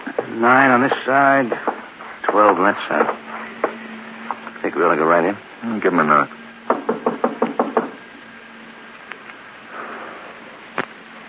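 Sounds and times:
speech: 0.2 - 1.7, 2.3 - 3.3, 4.6 - 6.4
firm knocks on a wooden door: 1.5 - 3.8, 6.7 - 8.0.

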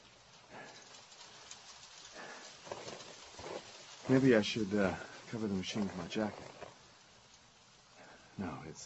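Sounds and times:
steady rain falling: 0.0 - 8.8
speech: 4.1 - 6.6, 8.4 - 8.8.

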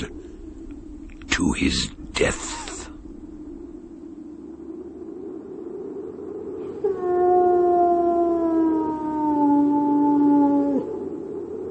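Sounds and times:
low rumble: 0.0 - 11.6
speech: 1.4 - 2.7
hound howling: 6.8 - 11.0.

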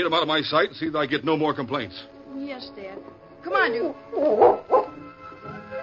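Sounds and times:
speech: 0.0 - 4.8
dog growling and barking: 4.1 - 5.0.

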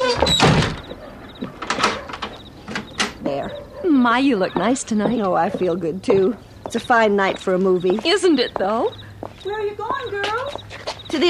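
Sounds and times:
door swinging shut with a solid thud: 0.0 - 3.2
door lock being turned with metallic clicks and rattles: 0.1 - 3.3
speech: 3.3 - 11.2.

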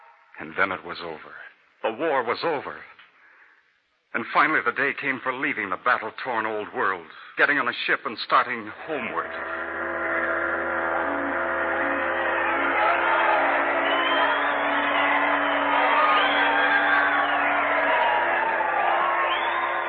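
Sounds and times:
speech: 0.4 - 2.9, 4.1 - 9.8
large crowd shouting and cheering: 8.8 - 19.8
whoops: 10.6 - 19.8.

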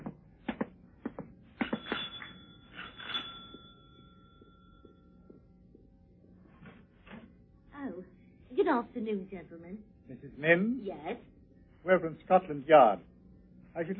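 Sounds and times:
front doorbell ringing with a clear bright chime: 1.6 - 5.4
speech: 8.7 - 13.1, 13.8 - 13.9.

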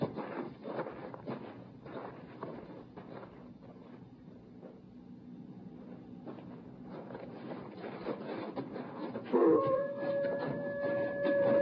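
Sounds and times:
rumbling busy noise: 0.0 - 11.6
wolf howling: 9.3 - 11.6.

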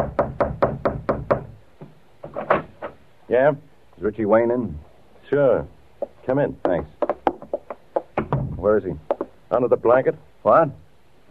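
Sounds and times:
people rapping firmly on a door: 0.0 - 2.0, 6.0 - 9.4
speech: 3.3 - 7.0, 8.6 - 11.2.

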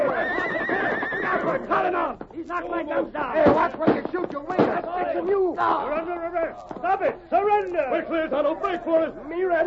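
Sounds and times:
horse neighing in a loud wavering whinny: 0.1 - 1.5
speech: 1.5 - 9.6.

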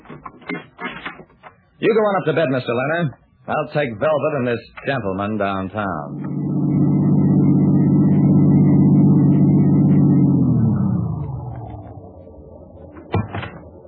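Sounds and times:
speech: 1.8 - 6.4
car engine rumbling as the car pulls away: 6.0 - 13.8.

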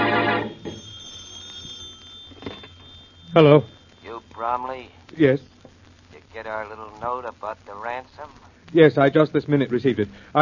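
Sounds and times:
old-fashioned telephone bell ringing in a home: 0.0 - 4.4
faint lingering hum: 0.0 - 10.4
speech: 3.3 - 3.8, 4.4 - 5.5, 6.4 - 10.4.

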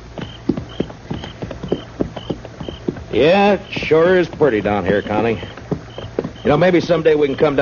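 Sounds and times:
horse hooves clip-clopping: 0.0 - 7.6
speech: 3.2 - 5.6, 6.4 - 7.6.

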